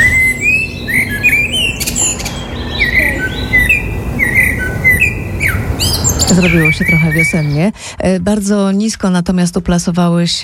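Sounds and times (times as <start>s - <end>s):
birds twittering faintly: 0.0s - 7.7s
blackbird singing: 0.0s - 7.7s
outdoor hiss: 0.0s - 8.0s
speech: 6.4s - 10.4s.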